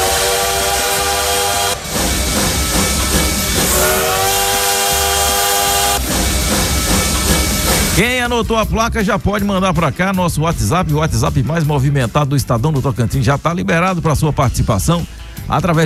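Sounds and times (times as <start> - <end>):
train whistle blasts with a steady harmonic tone: 0.0 - 8.0
speech: 8.2 - 15.8.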